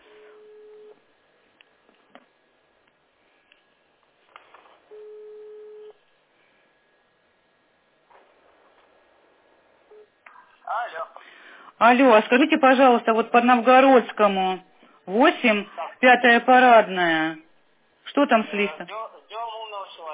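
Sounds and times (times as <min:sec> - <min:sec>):
telephone ringback tone as a call is placed to a local service: 0:00.0 - 0:01.0, 0:04.9 - 0:06.0
faint hum: 0:00.0 - 0:20.1
speech: 0:11.8 - 0:17.4, 0:18.1 - 0:19.1.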